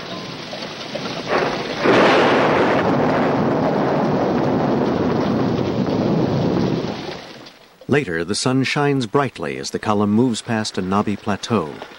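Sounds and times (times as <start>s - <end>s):
rolling thunder in a thunderstorm: 0.0s - 7.6s
rain-like noise: 0.0s - 11.9s
speech: 7.9s - 11.9s.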